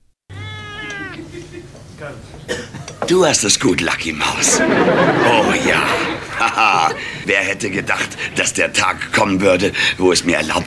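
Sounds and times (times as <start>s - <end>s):
cat meowing: 0.3s - 1.4s
laughter: 1.0s - 1.9s, 4.2s - 8.4s
speech: 1.3s - 10.6s.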